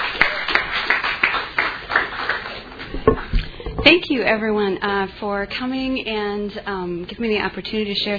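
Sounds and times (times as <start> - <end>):
audience applause in sharp hand claps: 0.0 - 3.4
speech: 3.1 - 8.1.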